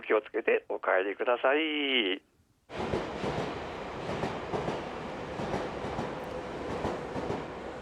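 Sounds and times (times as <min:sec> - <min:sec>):
speech: 0:00.1 - 0:03.1
train rolling along the rails with broadband rumble: 0:02.7 - 0:07.8.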